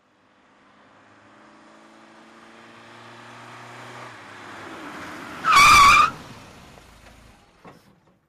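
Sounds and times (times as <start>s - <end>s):
BMW 530i driving fast: 0.2s - 7.6s
BMW 530i tyres skidding: 3.8s - 8.1s.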